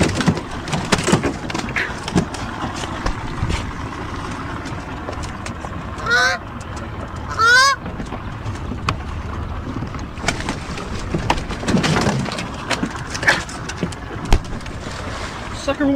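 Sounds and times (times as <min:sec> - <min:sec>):
outdoor rustling: 0:00.0 - 0:15.9
goose honking: 0:06.0 - 0:06.4, 0:07.3 - 0:07.8.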